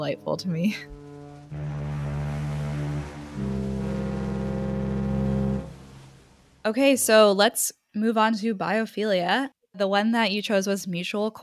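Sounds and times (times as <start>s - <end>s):
speech: 0.0s - 2.0s, 6.6s - 11.4s
deep brassy foghorn blasts: 0.9s - 6.7s.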